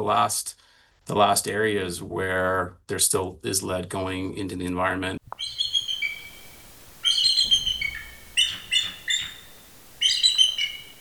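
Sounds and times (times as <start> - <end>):
speech: 0.0 - 5.6
bald eagles calling at feeding time: 5.3 - 10.9.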